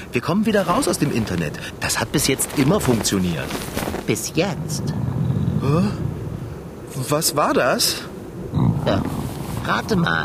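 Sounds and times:
speech: 0.1s - 6.1s, 7.0s - 10.2s
stomach growling: 8.5s - 9.4s.

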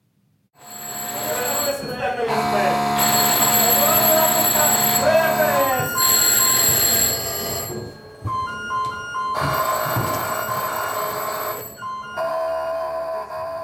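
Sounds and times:
alarm bells ringing in a nuclear power plant control room: 0.6s - 12.2s
alarm tones in a nuclear power plant control room: 0.6s - 13.6s
people running back and forth in a control room: 8.2s - 11.0s.

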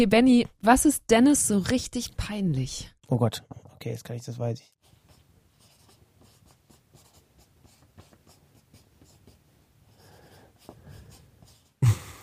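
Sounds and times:
speech: 0.0s - 4.8s
pen writing on paper: 4.8s - 11.8s.

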